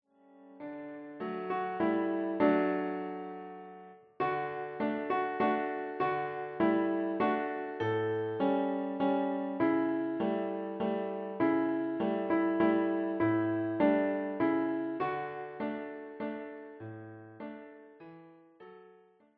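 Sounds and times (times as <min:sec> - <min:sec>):
Christmas carol played on piano: 0:00.2 - 0:19.2.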